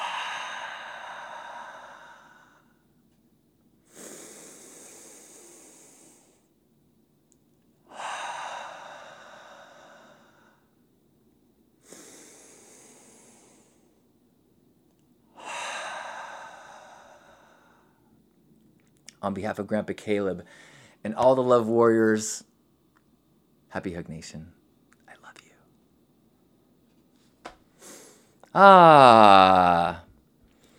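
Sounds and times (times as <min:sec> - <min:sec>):
group breathing deeply together during a group hug meditation: 0:00.0 - 0:02.8, 0:03.9 - 0:06.5, 0:07.9 - 0:10.8, 0:11.8 - 0:14.0, 0:15.4 - 0:18.1, 0:20.5 - 0:21.0
speech: 0:19.2 - 0:22.5, 0:23.7 - 0:24.6, 0:28.5 - 0:30.0.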